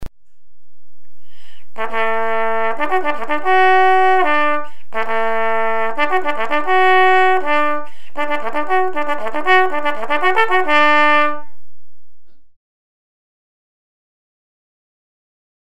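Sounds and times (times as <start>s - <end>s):
fanfare: 1.8s - 11.6s.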